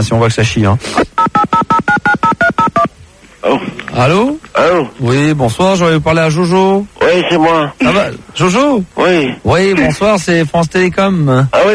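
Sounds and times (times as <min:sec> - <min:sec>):
speech: 0:00.0 - 0:01.3, 0:03.5 - 0:11.7
touch-tone telephone number being dialed for a call: 0:01.2 - 0:02.9.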